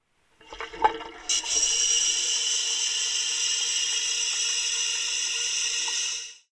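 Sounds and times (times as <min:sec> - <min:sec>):
toilet flushing: 0:00.4 - 0:06.5.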